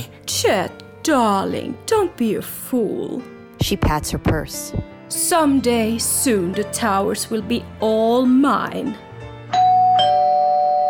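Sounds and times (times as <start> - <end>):
speech: 0.0 - 9.1
two-tone ding-dong doorbell chiming: 9.5 - 10.8.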